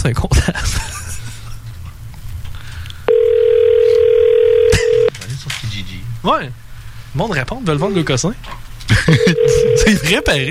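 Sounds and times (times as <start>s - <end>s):
speech: 0.0s - 0.9s, 6.2s - 10.4s
low noise: 0.0s - 10.4s
laughter: 0.4s - 1.7s, 8.9s - 10.2s
telephone ringing tone after dialing: 3.1s - 5.1s, 9.1s - 10.4s.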